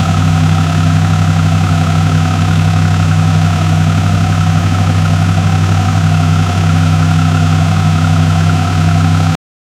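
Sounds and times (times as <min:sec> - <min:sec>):
drift car internal combustion engine running steadily: 0:00.0 - 0:09.4.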